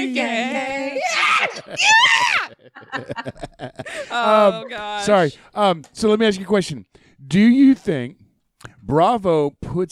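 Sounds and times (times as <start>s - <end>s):
choppy voices or laughter: 0.0s - 5.0s
excited human screeching: 1.0s - 2.6s
speech: 1.7s - 8.2s, 8.8s - 9.9s.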